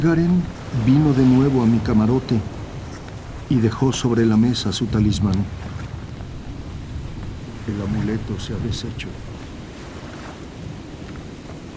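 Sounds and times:
speech: 0.0 - 2.6, 3.5 - 5.7, 7.7 - 9.3
churning waves at sea: 0.0 - 11.7
roaring storm wind at sea: 0.0 - 11.7.

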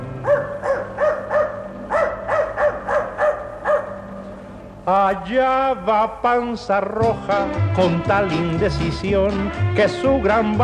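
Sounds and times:
dog barking: 0.2 - 4.1
speech: 4.9 - 10.6.

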